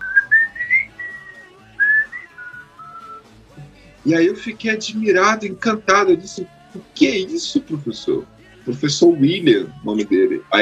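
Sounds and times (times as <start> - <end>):
person whistling a song melody: 0.0 - 3.3
speech: 4.0 - 10.5.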